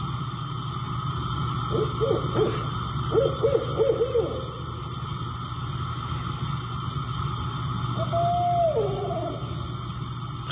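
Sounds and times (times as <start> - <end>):
steady pulsing insects in Cross Junction Virginia USA: 0.0 - 10.5
barred owl hooting in Cross Junction Virginia USA: 1.7 - 4.7, 7.9 - 9.6.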